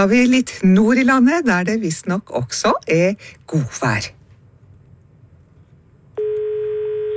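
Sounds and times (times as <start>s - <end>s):
speech: 0.0s - 4.2s
steady telephone line tone as call connects: 6.2s - 7.1s.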